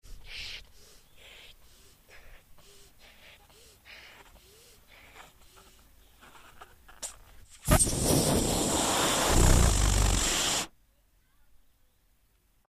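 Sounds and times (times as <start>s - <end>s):
balloon being inflated: 7.6s - 10.7s.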